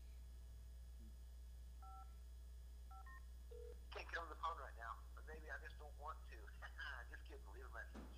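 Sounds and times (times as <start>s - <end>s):
steady low hum: 0.0s - 8.1s
phone beeps as voicemail cuts off a call: 1.8s - 2.2s, 2.9s - 3.8s
man talking: 3.9s - 8.1s.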